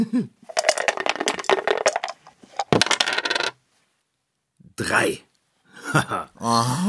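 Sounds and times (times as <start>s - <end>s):
speech: 0.0s - 0.6s, 4.8s - 5.3s, 5.9s - 6.8s
dice rolled across a hard surface during a board game: 0.5s - 3.6s.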